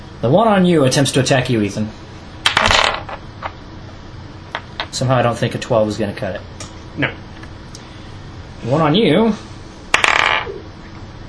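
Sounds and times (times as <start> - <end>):
speech: 0.2 - 2.1, 5.0 - 7.2, 8.6 - 9.5
dice rolled onto a tabletop during a fantasy role-playing game: 2.5 - 3.5, 9.9 - 10.6.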